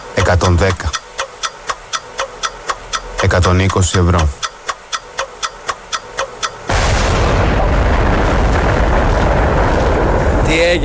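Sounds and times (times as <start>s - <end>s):
short evenly spaced ticks: 0.0s - 6.7s
speech: 0.3s - 1.0s, 3.2s - 4.4s
bursting explosion sound effect in radio quiz game: 6.7s - 10.8s.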